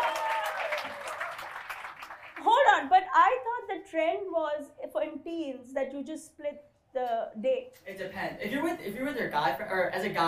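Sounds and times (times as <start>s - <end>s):
many hands clapping in applause: 0.0s - 2.5s
speech: 3.9s - 10.2s.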